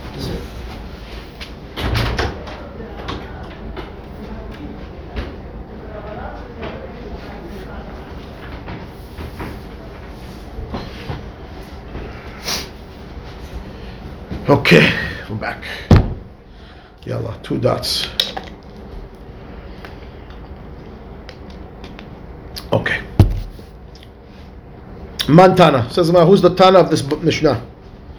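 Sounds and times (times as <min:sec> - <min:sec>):
faint activity: 0:00.0 - 0:28.1
door opening with thump and rattle: 0:01.8 - 0:02.4, 0:23.2 - 0:23.6
speech: 0:14.7 - 0:15.8, 0:17.1 - 0:18.2, 0:25.3 - 0:27.7.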